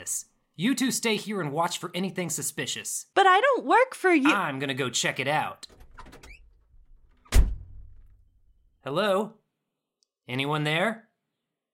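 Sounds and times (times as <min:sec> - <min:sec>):
speech: 0:00.1 - 0:05.8, 0:08.8 - 0:09.4, 0:10.3 - 0:11.1
door pushed open with a solid thunk and low rumble: 0:05.6 - 0:08.2.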